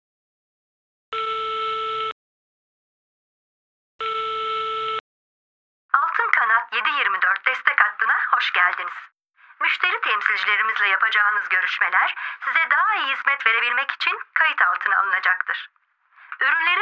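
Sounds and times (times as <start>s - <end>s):
telephone ringing tones while calling a support line: 1.1s - 2.1s, 4.0s - 5.0s
speech: 6.7s - 16.8s.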